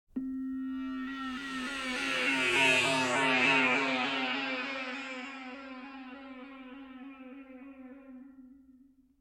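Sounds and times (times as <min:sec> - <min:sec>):
science fiction UFO satellite flying past: 0:00.8 - 0:08.0.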